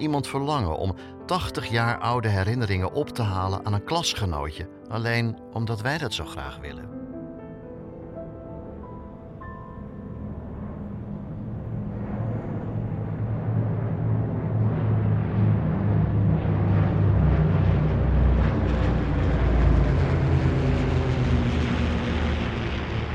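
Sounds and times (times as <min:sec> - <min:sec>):
speech: 0:00.0 - 0:07.0
airplane taking off heard from on board: 0:06.2 - 0:23.1.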